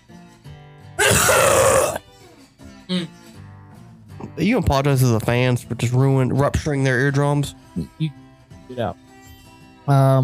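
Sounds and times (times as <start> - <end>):
person coughing harshly: 1.0 - 2.0
quiet throat-clearing grunt: 1.0 - 2.0, 2.9 - 3.2
speech: 4.4 - 9.0, 9.9 - 10.2.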